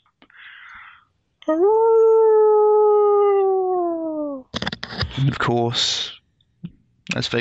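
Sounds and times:
wolf howling: 1.4 - 4.5
speech: 1.5 - 2.1, 5.2 - 6.2, 7.1 - 7.4.

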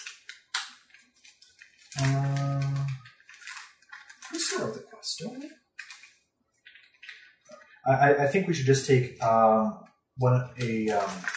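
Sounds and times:
board game pieces and cards being shuffled: 0.0 - 4.7, 10.6 - 11.3
speech: 2.0 - 2.3, 5.1 - 5.6, 7.9 - 11.3.

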